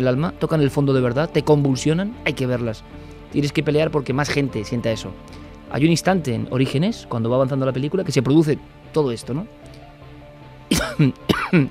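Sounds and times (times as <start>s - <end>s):
speech: 0.0s - 9.8s, 11.0s - 11.6s
person coughing: 10.7s - 11.6s.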